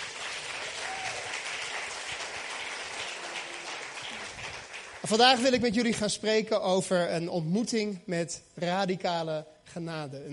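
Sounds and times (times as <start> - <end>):
crowd clapping: 0.0 - 5.7
speech: 5.0 - 10.3.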